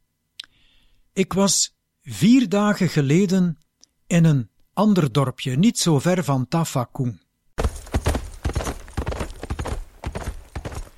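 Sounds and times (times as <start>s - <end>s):
speech: 1.2s - 7.2s
unsaddled horse hooves clip-clopping: 7.6s - 10.9s.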